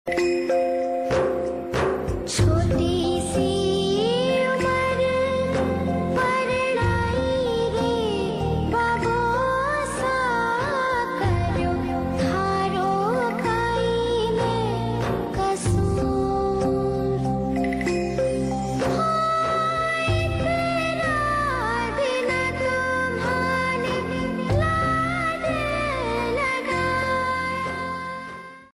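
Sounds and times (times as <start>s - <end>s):
old Hindi song ringtone: 0.1s - 28.7s.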